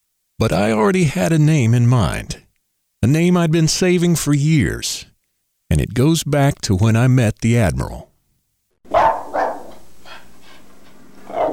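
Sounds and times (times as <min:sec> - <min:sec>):
speech: 0:00.4 - 0:02.4, 0:03.0 - 0:05.1, 0:05.7 - 0:08.1
dog yipping softly: 0:08.9 - 0:09.8, 0:11.3 - 0:11.5
dog barking: 0:08.9 - 0:10.2, 0:11.2 - 0:11.5.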